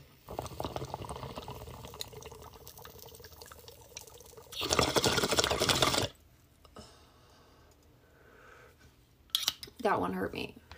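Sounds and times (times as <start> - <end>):
bong water bubbling during a hit: 0.2 - 6.2
speech: 9.9 - 10.6.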